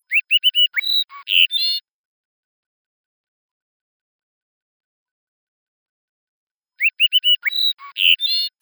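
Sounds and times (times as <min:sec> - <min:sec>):
endangered species song: 0:00.0 - 0:01.8, 0:06.8 - 0:08.6.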